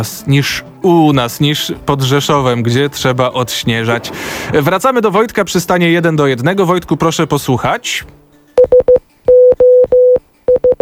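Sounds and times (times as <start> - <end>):
speech: 0.0 - 8.8
Morse code SOS distress signal beeped in a mid-pitched tone: 8.6 - 10.7.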